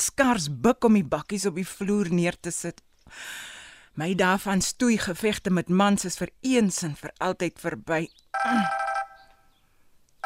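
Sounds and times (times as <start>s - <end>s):
speech: 0.0s - 8.9s
telephone ringing with warbling electronic ring: 8.4s - 9.5s.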